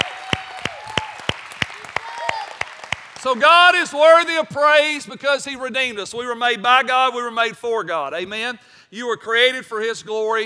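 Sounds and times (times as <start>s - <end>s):
audience clapping in praise: 0.0s - 3.9s
speech: 3.2s - 10.4s.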